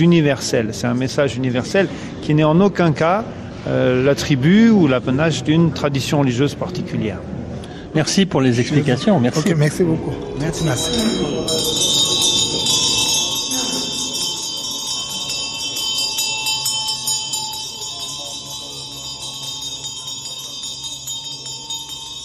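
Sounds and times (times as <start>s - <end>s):
speech: 0.0s - 12.1s
ritual bells ringing: 10.2s - 22.2s.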